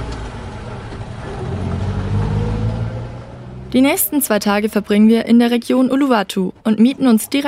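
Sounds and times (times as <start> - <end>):
taxi car engine accelerating while driving off: 0.0 - 4.8
speech: 3.7 - 7.4.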